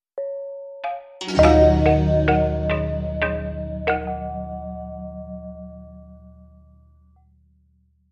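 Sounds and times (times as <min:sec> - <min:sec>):
short marimba notes: 0:00.2 - 0:04.9.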